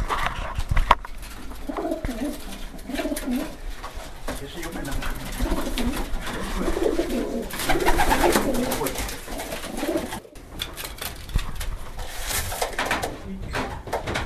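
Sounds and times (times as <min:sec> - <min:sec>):
faint rustling: 0:00.0 - 0:14.2
racing pigeons cooing in a loft: 0:01.2 - 0:10.5.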